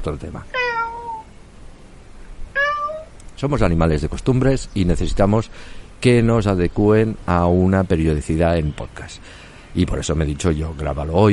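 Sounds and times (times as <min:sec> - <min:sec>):
speech: 0:00.0 - 0:00.6, 0:03.4 - 0:11.3
domestic cat meowing: 0:00.5 - 0:01.3, 0:02.5 - 0:03.2.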